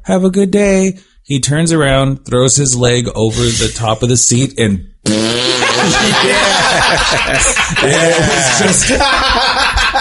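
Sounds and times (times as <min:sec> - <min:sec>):
speech: 0:00.1 - 0:09.9
voice imitating a loud meaty fart: 0:05.0 - 0:06.0
laughter: 0:05.2 - 0:09.9.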